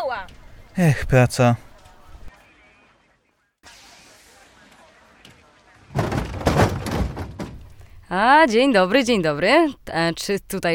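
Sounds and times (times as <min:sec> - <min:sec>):
low noise: 0:00.0 - 0:10.7
speech: 0:00.1 - 0:01.7, 0:08.1 - 0:10.7
short thud: 0:05.9 - 0:07.8.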